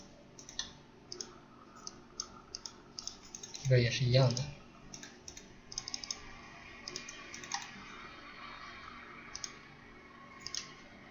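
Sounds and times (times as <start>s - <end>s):
computer mouse button clicking: 0.4s - 7.8s, 9.3s - 9.7s, 10.4s - 10.9s
speech: 3.6s - 4.6s.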